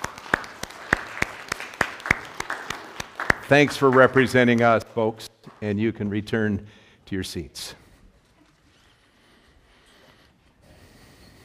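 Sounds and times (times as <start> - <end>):
audience clapping in a room: 0.0 - 6.2
speech: 3.5 - 7.8.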